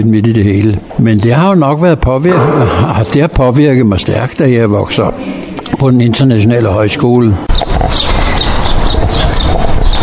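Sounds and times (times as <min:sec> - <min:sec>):
speech: 0:00.0 - 0:08.1
outdoor noise in a park: 0:00.0 - 0:10.0
birdsong in a park: 0:07.5 - 0:10.0.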